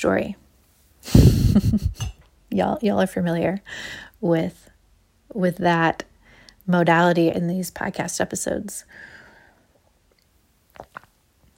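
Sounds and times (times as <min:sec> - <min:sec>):
speech: 0:00.0 - 0:00.4, 0:01.0 - 0:04.7, 0:05.3 - 0:06.1, 0:06.7 - 0:09.1
soft mouth noises: 0:09.8 - 0:11.5
sipping coffee: 0:10.7 - 0:11.1.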